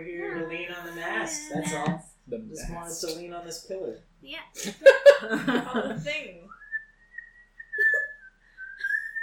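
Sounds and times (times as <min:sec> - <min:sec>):
speech: 0:00.8 - 0:06.6
laughter: 0:04.6 - 0:06.1
person whistling a casual nonchalant tone: 0:06.5 - 0:09.2.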